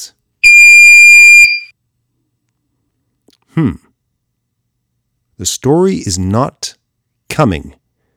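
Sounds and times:
loud steady electronic beep with harmonic overtones: 0.4 - 1.7
speech: 3.6 - 3.9, 5.4 - 7.8.

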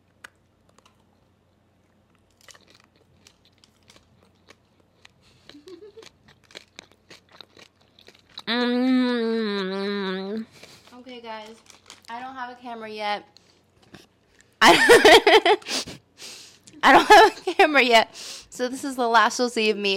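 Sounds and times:
biting and crunching into a treat: 0.0 - 9.0, 10.4 - 12.4
speech: 12.6 - 13.4, 14.9 - 15.8, 16.8 - 19.9.

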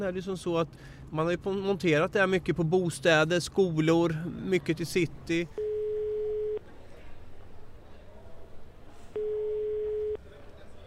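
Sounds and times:
speech: 0.0 - 5.6
telephone ringback tone: 5.6 - 6.6, 9.2 - 10.2.

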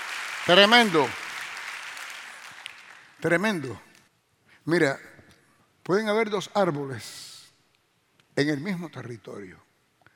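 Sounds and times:
congregation applauding: 0.0 - 3.2
speech: 0.5 - 1.2, 3.2 - 3.8, 4.7 - 5.1, 5.9 - 7.3, 8.4 - 9.7.

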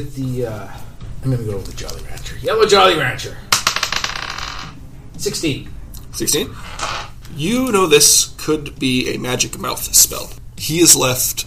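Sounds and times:
speech: 0.0 - 3.5, 5.2 - 11.4
twenty-sided die rolling across a hard tabletop: 3.5 - 4.8, 6.6 - 7.1.

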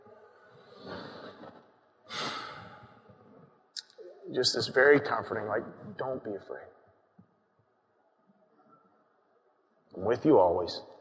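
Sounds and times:
deep breathing: 0.6 - 3.4
speech: 4.3 - 6.8, 10.0 - 10.9.

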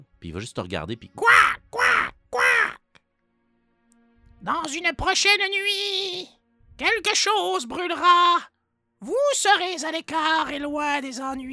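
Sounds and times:
speech: 0.2 - 1.6, 4.5 - 11.5
raven cawing: 1.2 - 2.8.

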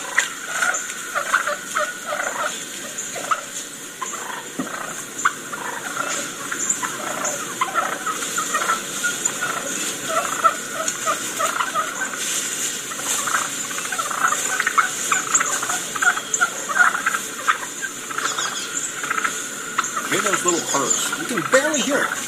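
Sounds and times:
steady outdoor hiss: 0.0 - 22.2
wild turkeys softly purring and putting: 0.0 - 22.2.

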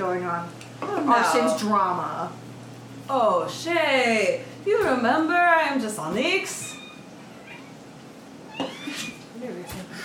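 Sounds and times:
speech: 0.0 - 2.5, 3.1 - 6.7
pet cat meowing: 6.7 - 7.8, 8.4 - 9.2.

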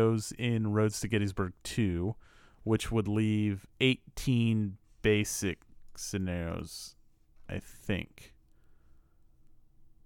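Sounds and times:
speech: 0.0 - 8.3
quiet hum: 0.0 - 10.0
faint sharp computer mouse clicks: 9.4 - 10.0.

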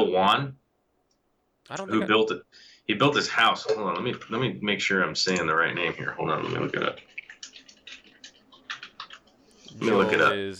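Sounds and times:
speech: 0.0 - 0.6, 1.7 - 7.1, 9.8 - 10.5
quick irregular keystrokes on a computer keyboard: 7.2 - 9.3.

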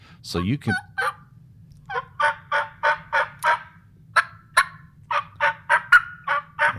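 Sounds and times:
turkey call yelps from a hunter's call muffled by hand, spring turkey hunting in Arizona: 0.7 - 1.3, 1.9 - 6.7.

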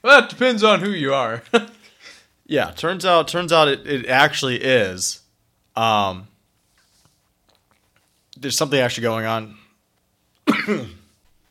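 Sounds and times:
speech: 0.0 - 1.8, 2.5 - 5.2, 5.8 - 6.3, 8.4 - 9.6, 10.5 - 11.0
harsh cough: 10.4 - 11.2.

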